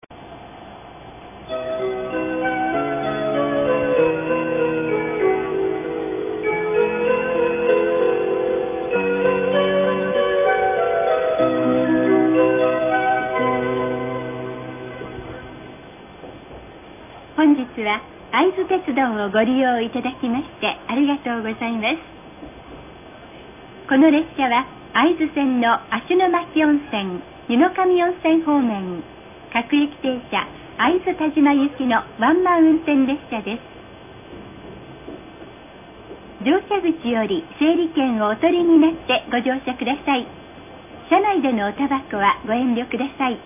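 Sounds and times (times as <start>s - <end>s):
original onboard chime on a local train: 1.4s - 15.9s
onboard announcement on a local train: 1.4s - 16.0s, 17.4s - 22.1s, 23.8s - 33.7s, 36.4s - 40.4s, 41.0s - 43.4s.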